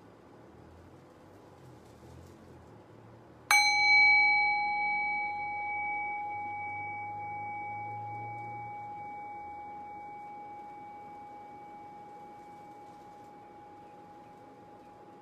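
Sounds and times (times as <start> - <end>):
faint low hum: 0.0 - 15.2
meditation bell ringing: 3.5 - 15.2.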